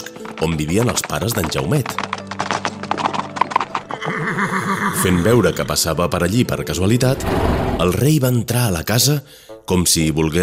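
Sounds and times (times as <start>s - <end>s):
hooves of a fast saddled horse galloping: 0.0s - 5.8s
speech: 0.4s - 2.0s, 5.0s - 10.4s.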